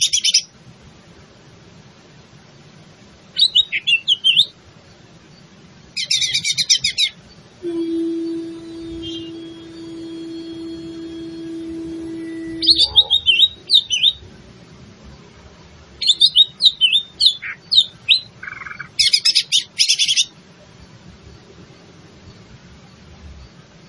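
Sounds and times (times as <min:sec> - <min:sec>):
leafbird cucak ijo singing rapid high chatter and twisting whistled notes: 0:03.4 - 0:04.6, 0:06.0 - 0:07.4, 0:12.6 - 0:14.2, 0:16.0 - 0:20.3
steady low droning tone: 0:07.5 - 0:14.4.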